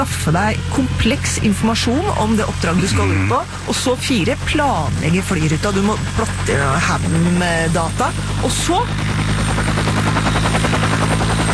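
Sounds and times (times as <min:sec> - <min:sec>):
speech: 0:00.0 - 0:09.1
search-and-rescue helicopter taking off: 0:00.0 - 0:11.5.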